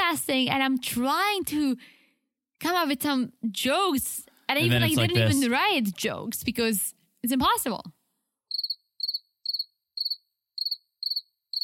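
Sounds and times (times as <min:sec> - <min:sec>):
speech: 0:00.1 - 0:02.0, 0:02.6 - 0:08.0
crickets chirping: 0:08.5 - 0:11.6.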